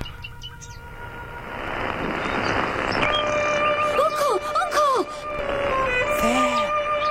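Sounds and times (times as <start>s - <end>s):
wild bird singing in a garden in Surrey, relayed over the radio: 0.0s - 1.0s, 2.1s - 5.1s, 6.0s - 7.1s.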